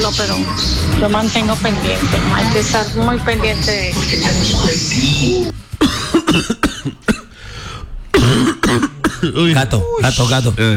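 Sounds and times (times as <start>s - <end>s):
speech: 0.1s - 7.0s, 8.3s - 10.7s
person coughing harshly and rapidly: 5.8s - 7.4s, 8.1s - 9.5s.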